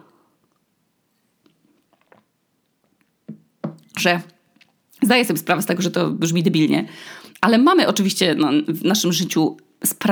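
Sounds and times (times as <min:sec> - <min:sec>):
person sipping water: 0:01.4 - 0:02.4
swallowing gulps: 0:01.7 - 0:02.4
speech: 0:04.0 - 0:04.4, 0:05.0 - 0:10.1.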